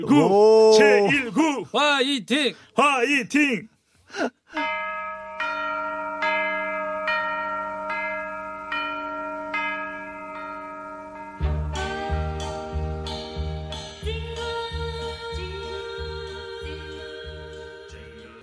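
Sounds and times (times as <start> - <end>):
speech: 0.0 - 5.0
bell chimes: 4.6 - 11.6
full band playing a Christmas carol: 4.6 - 13.8.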